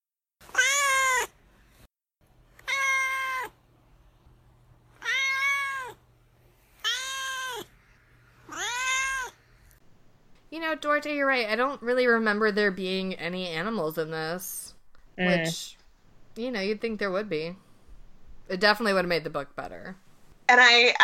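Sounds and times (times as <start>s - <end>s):
domestic cat meowing: 0.4s - 1.4s, 2.6s - 3.6s, 5.0s - 6.0s, 6.8s - 7.7s, 8.5s - 9.4s
speech: 10.7s - 15.8s, 16.4s - 17.6s, 18.5s - 21.0s.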